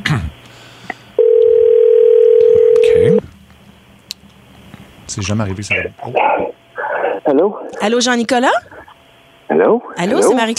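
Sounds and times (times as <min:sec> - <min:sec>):
telephone ringing on a call: 0:01.2 - 0:03.2
speech: 0:05.2 - 0:06.5, 0:07.2 - 0:08.7, 0:09.6 - 0:10.5.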